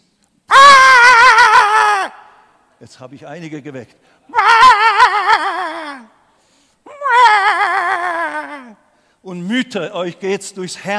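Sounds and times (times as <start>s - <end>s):
voice imitating a screaming baby: 0.5s - 2.4s, 4.3s - 6.2s, 6.9s - 8.8s
speech: 2.8s - 5.2s, 9.3s - 10.9s.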